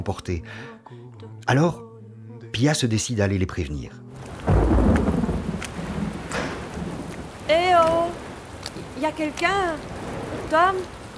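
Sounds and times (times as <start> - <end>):
speech: 0.0 - 1.9, 2.6 - 4.8, 9.0 - 9.9, 10.5 - 11.0
steady hiss of rain: 4.1 - 11.1
deep loud roll of thunder: 4.3 - 11.1.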